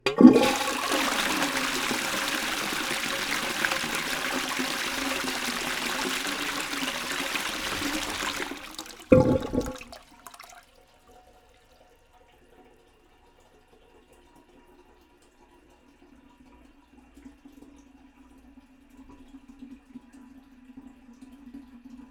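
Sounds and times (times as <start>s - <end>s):
toilet bowl: 0.0s - 10.7s.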